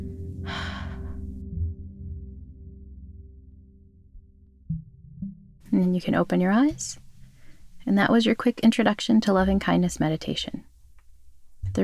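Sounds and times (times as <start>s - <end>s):
low steady humming tone: 0.0s - 5.9s, 11.6s - 11.8s
speech: 5.7s - 7.0s, 7.9s - 10.7s
deep breath in through the nose: 7.2s - 7.8s.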